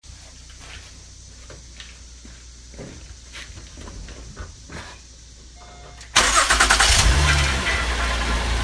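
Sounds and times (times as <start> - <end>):
4G TL engine startup with strange noise: 6.2 - 8.5.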